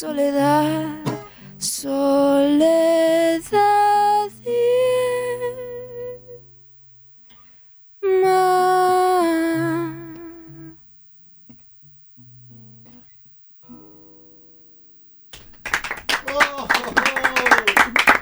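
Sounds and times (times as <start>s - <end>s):
speech: 0.0s - 3.6s
person singing a long held note: 0.0s - 6.4s, 8.0s - 10.7s
applause with cheering from behind studio glass: 15.3s - 18.1s.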